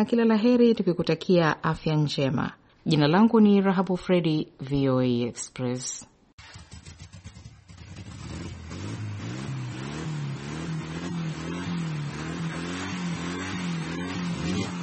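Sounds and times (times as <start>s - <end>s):
speech: 0.0s - 6.6s
car engine running after being started: 6.4s - 14.8s.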